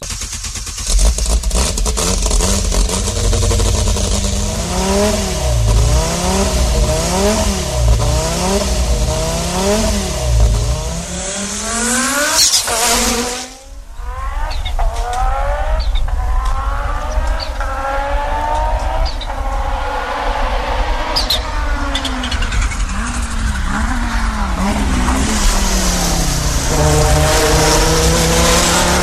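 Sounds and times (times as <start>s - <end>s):
turbo engine: 0.0s - 29.0s.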